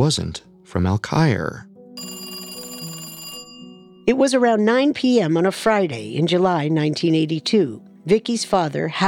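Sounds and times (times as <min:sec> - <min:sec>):
speech: 0:00.0 - 0:01.7, 0:04.1 - 0:09.0
telephone ringing with a trilling electronic bell tone: 0:02.0 - 0:04.6.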